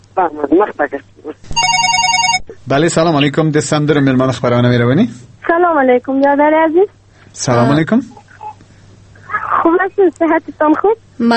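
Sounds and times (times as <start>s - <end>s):
speech: 0.2s - 1.8s, 2.6s - 8.2s, 9.7s - 11.3s
telephone ringing with a rapidly pulsing electronic tone: 1.5s - 2.6s.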